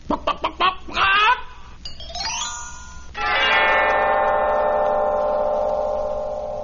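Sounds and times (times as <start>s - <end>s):
hen clucking: 0.0s - 1.5s
long sustained ringing chime: 1.8s - 6.6s.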